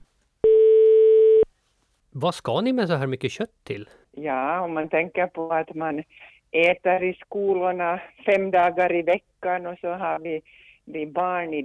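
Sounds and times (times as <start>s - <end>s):
telephone ringback tone during outgoing call: 0.4s - 1.4s
speech: 2.2s - 11.6s.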